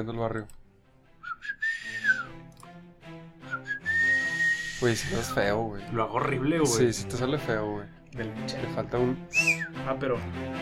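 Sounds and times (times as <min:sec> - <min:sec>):
speech: 0:00.0 - 0:00.6, 0:04.8 - 0:10.6
person whistling two rising gliding notes: 0:01.2 - 0:02.4, 0:03.4 - 0:05.4, 0:09.3 - 0:09.8.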